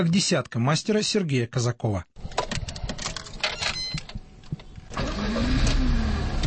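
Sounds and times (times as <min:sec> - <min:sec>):
speech: 0:00.0 - 0:02.4
clicks and handling noises in a training car: 0:02.2 - 0:04.9
training car engine starting and running on a driving course: 0:02.3 - 0:06.4.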